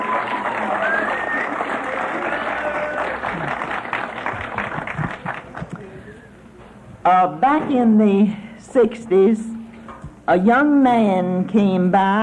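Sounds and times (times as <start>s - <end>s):
audience applause: 0.0s - 5.9s
people cheering: 0.0s - 5.9s
speech: 7.1s - 9.5s, 10.3s - 12.2s.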